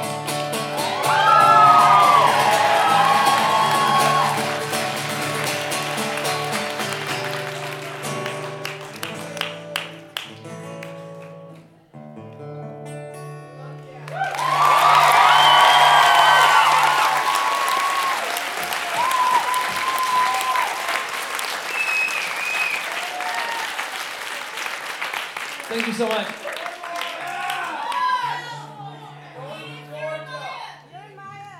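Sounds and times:
large crowd cheering at a metal concert: 0:00.4 - 0:10.4, 0:14.1 - 0:29.3
crowd whoops and shouts at a metal concert: 0:00.8 - 0:04.6, 0:14.1 - 0:20.9, 0:21.7 - 0:23.8, 0:27.2 - 0:29.0.

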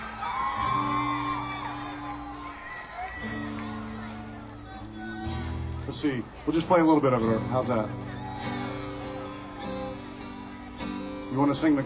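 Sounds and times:
live crowd whooping and yelling in a noisy hall: 0:00.0 - 0:05.8, 0:07.8 - 0:10.2
speech: 0:05.9 - 0:08.5, 0:11.3 - 0:11.8.

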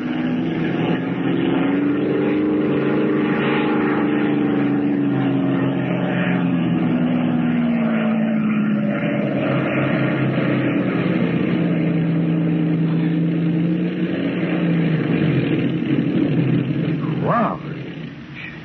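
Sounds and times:
propeller airplane engine droning while landing in a rocky field: 0:00.0 - 0:18.6.

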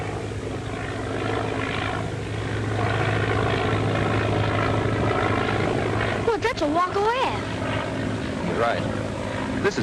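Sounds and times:
propeller airplane flying overhead: 0:00.0 - 0:09.8
speech: 0:08.6 - 0:09.0, 0:09.6 - 0:09.8.

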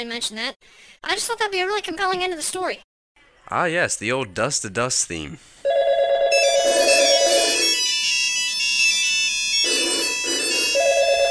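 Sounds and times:
speech: 0:00.0 - 0:02.9, 0:03.5 - 0:05.6
electronic telephone ringtone with chiming melody: 0:05.7 - 0:11.3.

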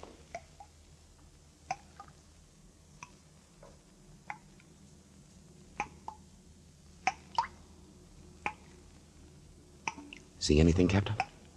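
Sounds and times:
low steady hum: 0:00.0 - 0:11.5
water dripping in a cave chamber: 0:00.2 - 0:04.7, 0:05.7 - 0:07.7, 0:08.4 - 0:08.8, 0:09.8 - 0:10.4, 0:11.0 - 0:11.5
speech: 0:10.4 - 0:11.3.

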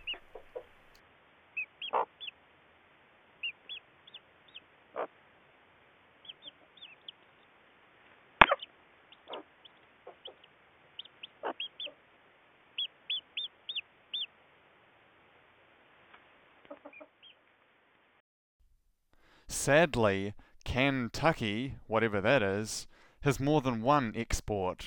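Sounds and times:
newly hatched chicks peeping: 0:00.0 - 0:00.9, 0:01.6 - 0:02.3, 0:03.4 - 0:05.1, 0:06.2 - 0:07.3, 0:08.4 - 0:12.0, 0:12.8 - 0:14.3
speech: 0:19.6 - 0:24.8.

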